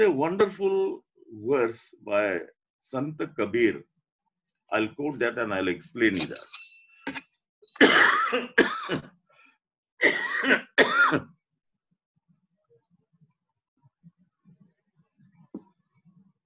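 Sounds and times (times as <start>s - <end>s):
speech: 0.0s - 3.9s, 4.7s - 6.6s, 7.8s - 9.1s, 10.0s - 11.3s
person clearing throat: 7.8s - 9.1s, 10.0s - 11.3s
person coughing: 7.8s - 9.1s, 10.0s - 11.3s.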